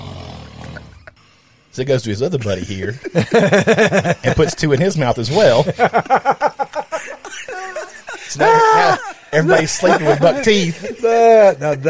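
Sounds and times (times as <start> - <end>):
man snoring in his sleep: 0.0 - 1.2
speech: 1.8 - 6.7, 7.4 - 11.8
laughter: 2.4 - 11.8.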